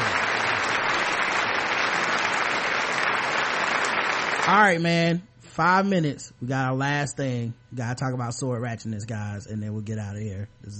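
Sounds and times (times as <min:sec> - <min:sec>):
applause sound effect from a sizable crowd: 0:00.0 - 0:04.6
speech: 0:04.5 - 0:10.7.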